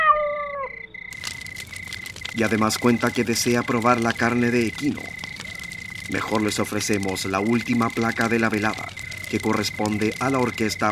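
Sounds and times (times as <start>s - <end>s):
cat meowing: 0.0s - 0.8s
speech: 2.4s - 5.2s, 6.1s - 10.9s.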